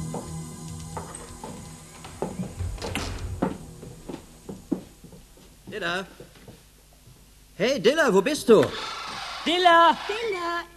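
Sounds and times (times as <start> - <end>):
knocks and soft thuds of people stepping inside: 0.0 - 7.5
house door opening with a clunk and rattle: 1.1 - 4.1
speech: 5.8 - 6.2, 7.6 - 10.7.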